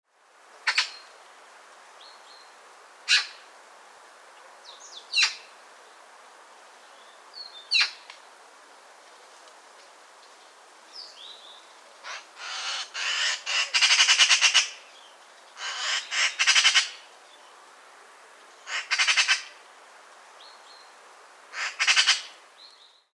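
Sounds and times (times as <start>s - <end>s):
magpie calls: 0.7s - 1.0s, 3.1s - 3.4s, 5.1s - 5.5s, 12.0s - 14.8s, 15.6s - 17.0s, 18.6s - 19.6s, 21.5s - 22.4s.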